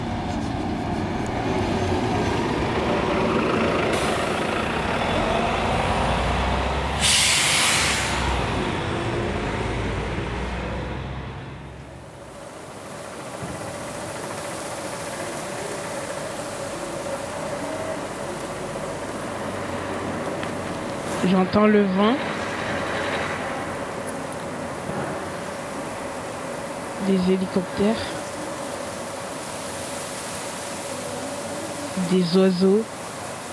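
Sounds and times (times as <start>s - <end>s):
passing bus engine rumbling: 0.0s - 33.5s
hissing burst from passing bus: 7.0s - 8.5s
speech: 21.3s - 22.3s, 27.1s - 28.2s, 32.1s - 33.0s.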